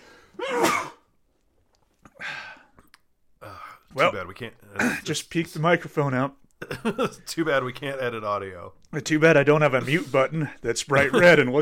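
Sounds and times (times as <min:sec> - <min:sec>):
person sneezing: 0:00.4 - 0:01.1
speech: 0:03.9 - 0:11.6.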